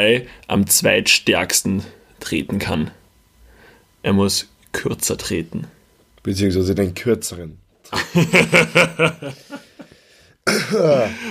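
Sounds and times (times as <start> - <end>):
speech: 0.0 - 3.0, 4.0 - 9.6, 10.5 - 11.2
laughter: 7.9 - 9.9, 10.5 - 11.2
small throat-clearing coughs: 10.4 - 11.2.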